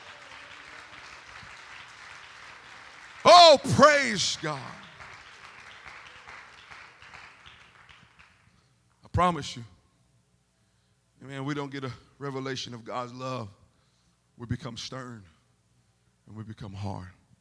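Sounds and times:
large crowd applauding: 0:00.0 - 0:08.6
man shouting excitedly: 0:03.2 - 0:04.8
speech: 0:03.5 - 0:04.8, 0:09.2 - 0:09.7, 0:11.3 - 0:13.6, 0:14.4 - 0:15.4, 0:16.3 - 0:17.2.

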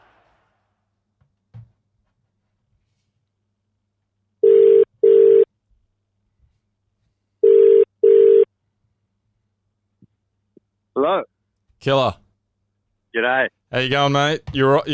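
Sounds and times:
telephone ringback tone double ring: 0:04.4 - 0:05.5, 0:07.4 - 0:08.5
speech: 0:11.8 - 0:12.2, 0:13.2 - 0:14.9.

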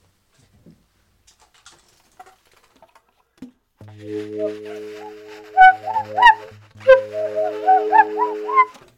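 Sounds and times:
Swainson's thrush singing flutelike whirling phrases: 0:04.0 - 0:08.7.

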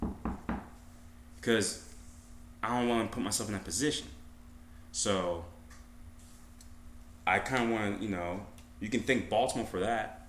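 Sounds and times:
knocks on a wooden surface: 0:00.0 - 0:00.8
speech: 0:01.4 - 0:01.9, 0:02.6 - 0:04.2, 0:04.9 - 0:05.5, 0:07.3 - 0:10.2.

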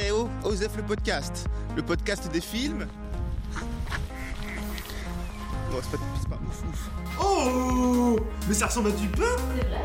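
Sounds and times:
speech: 0:00.4 - 0:03.0, 0:05.8 - 0:09.8
ducks quacking: 0:03.5 - 0:05.4.

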